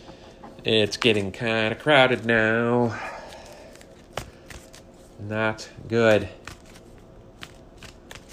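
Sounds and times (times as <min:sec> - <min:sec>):
speech: 0:00.6 - 0:03.1, 0:05.3 - 0:06.4
deck of cards being shuffled for a card game: 0:00.8 - 0:01.4, 0:03.4 - 0:05.2, 0:06.0 - 0:08.3.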